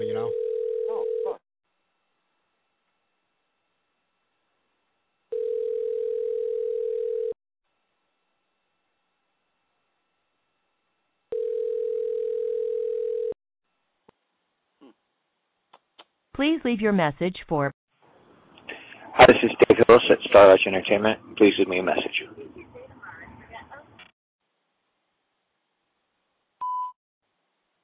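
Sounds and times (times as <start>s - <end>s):
telephone ringback tones while a call is dialed: 0.2s - 1.4s, 5.3s - 7.4s, 11.3s - 13.4s
speech: 16.4s - 17.8s, 19.2s - 22.8s.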